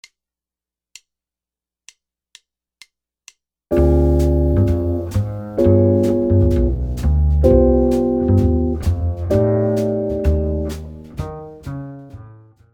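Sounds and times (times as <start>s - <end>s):
jazz guitar comping: 3.7s - 12.6s.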